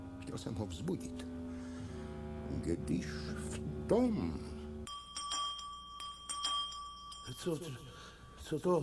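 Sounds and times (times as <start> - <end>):
speech: 0.3 - 1.4, 2.5 - 4.6, 7.3 - 8.8
bell ringing: 4.8 - 8.8.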